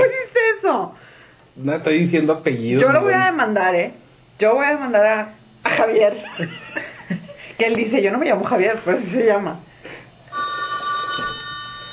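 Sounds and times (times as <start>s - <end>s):
speech: 0.7s - 1.0s, 1.6s - 9.7s
telephone ringing: 10.3s - 11.9s.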